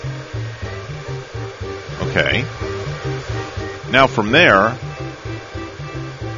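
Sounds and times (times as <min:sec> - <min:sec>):
hair dryer blowing: 0:00.0 - 0:06.3
rhythmic low thumping pulse: 0:00.0 - 0:06.3
speech: 0:02.1 - 0:02.7, 0:03.9 - 0:04.8.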